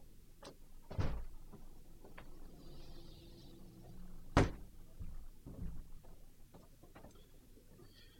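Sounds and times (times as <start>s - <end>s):
studio door being opened: 0.4s - 1.6s
door thumps: 4.3s - 5.9s.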